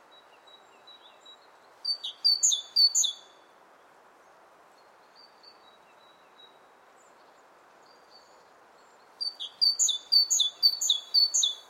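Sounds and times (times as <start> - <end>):
great tit singing: 0.9 - 3.2, 9.0 - 11.6.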